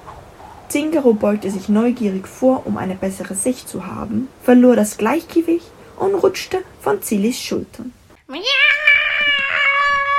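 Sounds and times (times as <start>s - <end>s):
speech: 0.7s - 8.8s
person imitating a cat meow: 8.3s - 10.1s.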